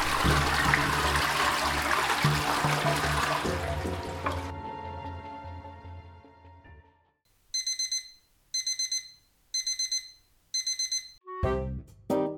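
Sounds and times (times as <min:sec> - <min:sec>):
toilet flushing: 0:00.0 - 0:04.7.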